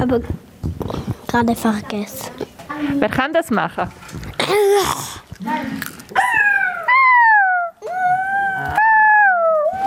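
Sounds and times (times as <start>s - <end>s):
speech: 0.0s - 5.9s
child imitating a fox with sharp yips and wavering falling wails: 6.2s - 9.8s.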